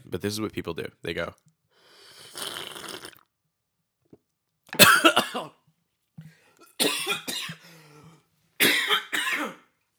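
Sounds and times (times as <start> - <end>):
speech: 0.1 - 1.5
raspy intake of breath: 1.8 - 2.6
harsh sputtering coughing after choking on a drink: 4.8 - 5.5, 6.8 - 7.6, 8.6 - 9.6.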